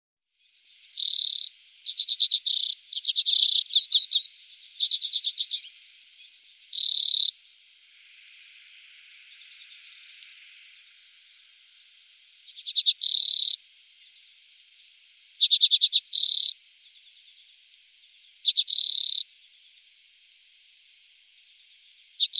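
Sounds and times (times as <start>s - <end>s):
Common redpoll calls: 0.9s - 7.4s, 9.1s - 11.7s, 12.4s - 14.2s, 15.4s - 17.4s, 18.4s - 19.3s, 22.2s - 22.3s.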